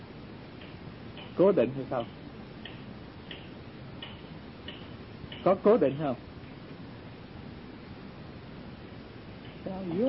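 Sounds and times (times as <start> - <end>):
low constant hum: 0.0 - 10.0
speech: 1.4 - 2.2, 5.4 - 6.3, 9.8 - 10.0
clock on a table ticking: 2.0 - 5.6.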